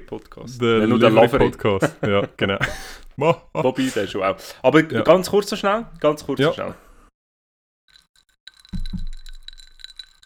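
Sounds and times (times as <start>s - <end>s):
speech: 0.1s - 6.8s
laughter: 0.6s - 4.4s
ice cubes clinking in a glass of whisky sour: 7.9s - 10.2s.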